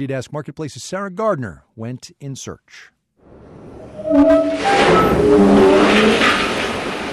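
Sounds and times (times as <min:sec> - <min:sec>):
speech: 0:00.0 - 0:03.0, 0:04.1 - 0:06.5
coal pouring into a railroad car: 0:05.8 - 0:07.1.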